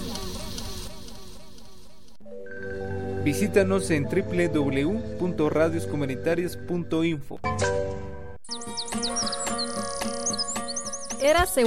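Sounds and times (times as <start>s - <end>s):
speech: 3.2s - 8.1s, 11.2s - 11.6s
birds chirping and tweeting in a forest: 8.4s - 11.6s.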